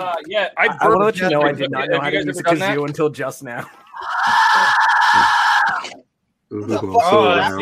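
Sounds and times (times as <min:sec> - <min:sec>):
speech: 0:00.0 - 0:07.5
Mayan death whistle rasping scream: 0:04.0 - 0:05.8.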